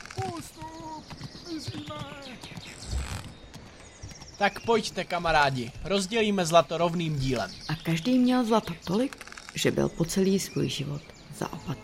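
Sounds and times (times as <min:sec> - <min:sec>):
horses galloping with clip-clopping hooves: 0:00.0 - 0:07.5
speech: 0:04.4 - 0:11.8.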